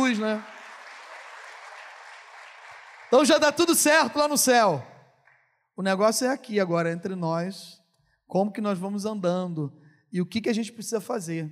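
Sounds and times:
crowd applauding: 0.0 - 4.2
speech: 0.1 - 0.6, 3.1 - 4.9, 5.8 - 11.4.

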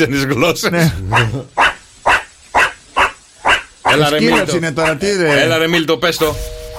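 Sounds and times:
speech: 0.0 - 1.6, 3.9 - 6.6
meerkat giving short sharp barking calls: 1.0 - 5.6.

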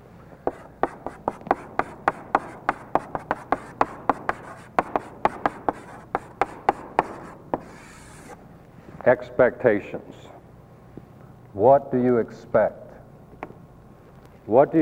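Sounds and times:
marker or chalk writing a word on a classroom board: 0.4 - 8.4
speech: 9.0 - 10.4, 11.6 - 12.8, 14.5 - 14.7.

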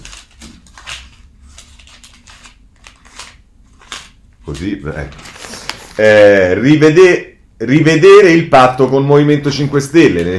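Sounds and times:
newspaper pages being handled and turned: 0.0 - 6.1
speech: 4.5 - 5.3, 6.0 - 10.3.

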